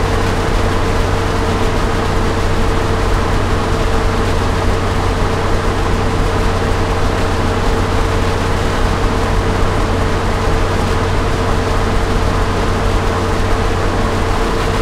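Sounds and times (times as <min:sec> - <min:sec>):
M1 tank engine running: 0:00.0 - 0:14.7.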